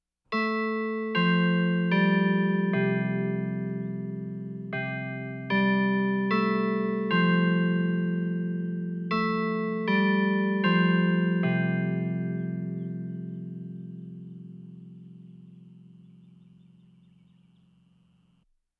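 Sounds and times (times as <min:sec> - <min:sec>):
church tower clock in the countryside: 0:00.3 - 0:17.1.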